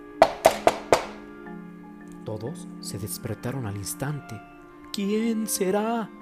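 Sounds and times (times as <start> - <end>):
firm knocking on a door during a storm: 0.2 - 1.2
speech: 2.3 - 6.2.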